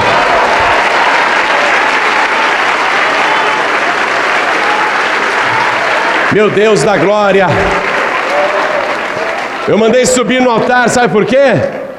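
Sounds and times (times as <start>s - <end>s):
large church congregation applauding: 0.0s - 11.9s
speech: 6.3s - 7.8s, 9.6s - 11.8s.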